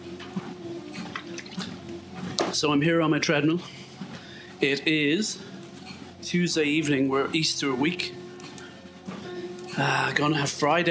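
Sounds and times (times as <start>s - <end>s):
low constant hum: 0.0s - 10.9s
water pouring and splashing: 1.0s - 1.8s
speech: 2.5s - 3.8s, 4.6s - 5.5s, 6.2s - 8.2s, 9.8s - 10.9s.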